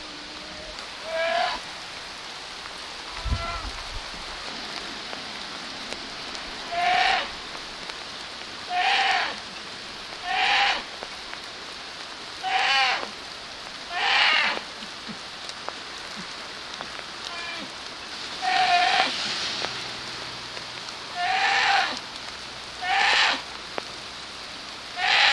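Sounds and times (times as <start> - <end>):
scared bear cub crying in tree: 0.1 - 1.6, 6.7 - 7.3, 8.7 - 9.4, 10.2 - 10.8, 12.4 - 13.1, 13.9 - 15.2, 18.4 - 19.1, 21.1 - 22.0, 22.8 - 23.4, 25.0 - 25.3.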